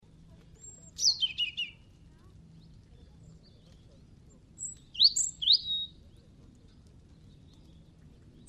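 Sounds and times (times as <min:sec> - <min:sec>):
low steady hum: 0:00.0 - 0:08.4
European robin singing: 0:00.6 - 0:01.9, 0:02.5 - 0:08.4.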